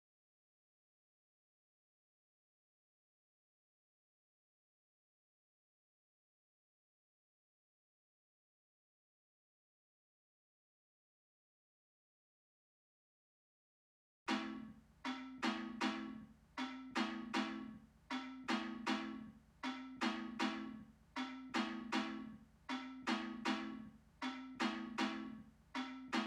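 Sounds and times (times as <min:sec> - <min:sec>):
mallet melody loop in A minor: 0:14.3 - 0:26.2.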